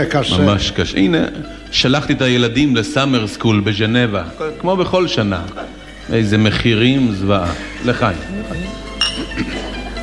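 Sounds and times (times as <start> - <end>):
speech: 0.0 - 8.8
glasses clinking in a toast: 8.7 - 9.9.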